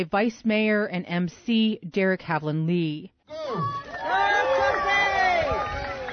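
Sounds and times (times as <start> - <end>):
speech: 0.0 - 3.9
crowd cheering and whooping at a muktuk eating contest: 3.4 - 6.1.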